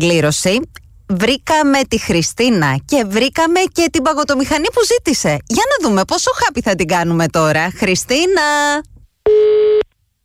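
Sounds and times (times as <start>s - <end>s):
speech: 0.0s - 9.8s
telephone tone of an outgoing call: 9.3s - 9.9s.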